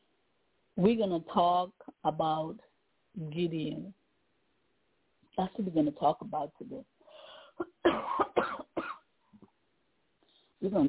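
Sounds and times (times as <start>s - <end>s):
speech: 0.8s - 4.0s, 5.4s - 6.9s, 7.6s - 8.6s, 10.6s - 10.8s
loud fit of coughing: 7.6s - 9.0s.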